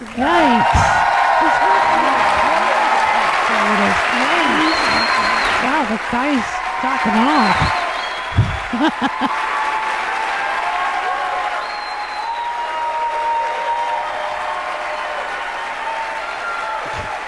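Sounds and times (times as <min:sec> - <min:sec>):
laughter: 0:00.0 - 0:10.3
applause from a large crowd: 0:00.0 - 0:17.2
speech: 0:00.2 - 0:00.7, 0:05.9 - 0:09.5.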